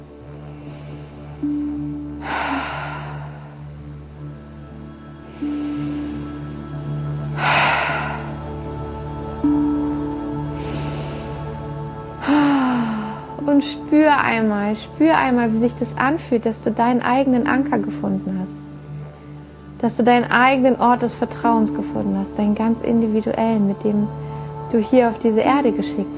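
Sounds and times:
quiet sustained musical drone: 0.0s - 26.1s
slow deep breaths during a guided relaxation exercise: 0.2s - 4.0s, 5.2s - 8.9s, 10.4s - 13.4s
speech: 13.6s - 18.7s, 19.8s - 26.1s.

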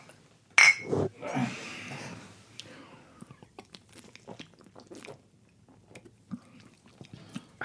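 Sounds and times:
glasses of Helles beer clinking in a toast: 0.5s - 0.9s
sipping and swallowing beer: 3.2s - 7.6s.

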